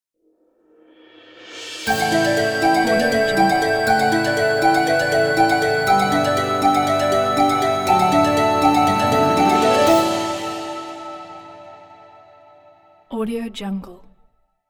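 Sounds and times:
logo sound: 1.9 - 12.8.

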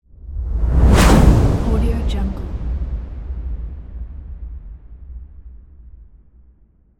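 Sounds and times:
cinematic big arrow airy whoosh: 0.4 - 3.6.

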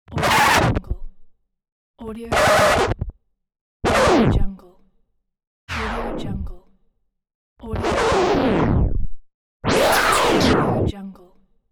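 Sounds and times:
record scratch: 0.1 - 0.9, 2.3 - 3.1, 3.9 - 4.5, 5.7 - 6.4, 7.7 - 10.9.

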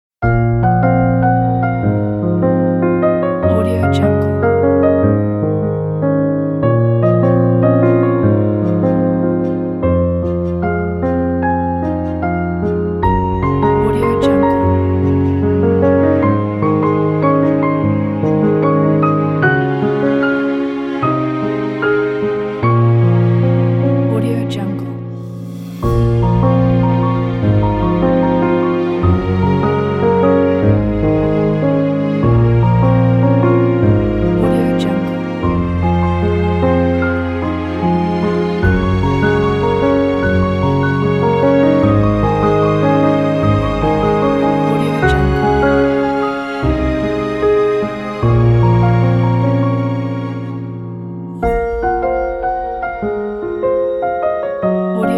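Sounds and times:
flowing piano: 0.2 - 55.1
emotive cello: 0.4 - 55.1.

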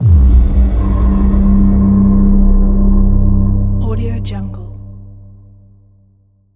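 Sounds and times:
dramatic impact: 0.0 - 5.8.

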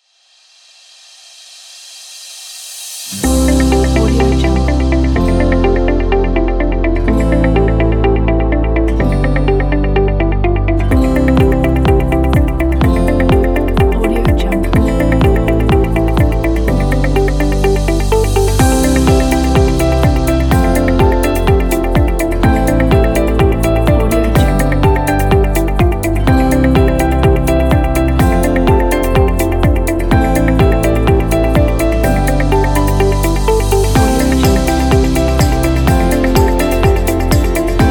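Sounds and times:
inspirational corporate music: 3.0 - 37.8.

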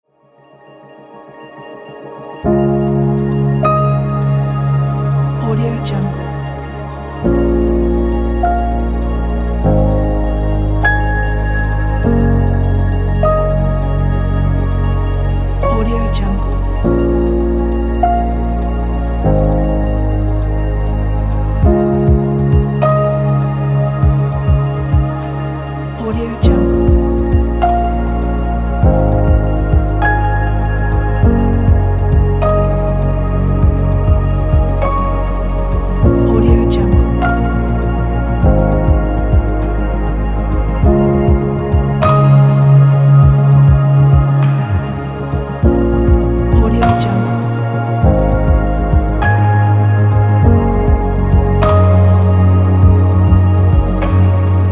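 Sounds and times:
electronic ambient soundscape: 0.1 - 54.7.

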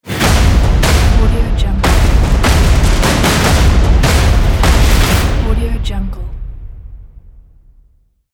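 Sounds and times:
battle drums logo: 0.0 - 6.9.

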